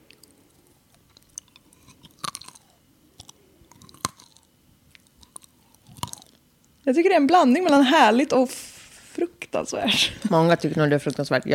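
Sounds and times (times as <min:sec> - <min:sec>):
chewing a mouthful of crunchy nuts: 0:00.0 - 0:06.8
speech: 0:06.9 - 0:11.5.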